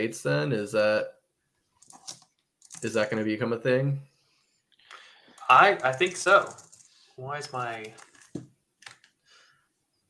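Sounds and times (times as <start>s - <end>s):
speech: 0.0s - 1.2s, 2.8s - 4.1s, 5.5s - 6.6s, 7.2s - 8.5s
taps on a computer keyboard: 1.8s - 2.9s, 5.4s - 7.0s, 7.6s - 9.1s.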